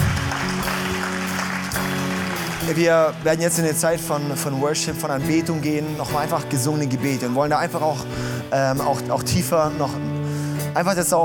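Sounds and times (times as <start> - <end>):
large crowd clapping: 0.0 - 4.4
sustained low keyboard-like chords: 0.0 - 11.2
speech: 2.7 - 10.2, 10.8 - 11.2.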